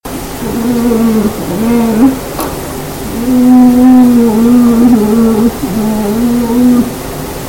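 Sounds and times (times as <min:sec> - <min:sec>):
bear: 0:00.4 - 0:02.3, 0:03.0 - 0:07.0.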